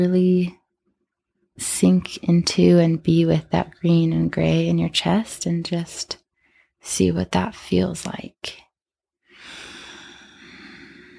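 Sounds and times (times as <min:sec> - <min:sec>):
speech: 0:00.0 - 0:00.6, 0:01.6 - 0:06.2, 0:06.8 - 0:08.6
big deep breath: 0:06.3 - 0:06.8, 0:09.3 - 0:11.1.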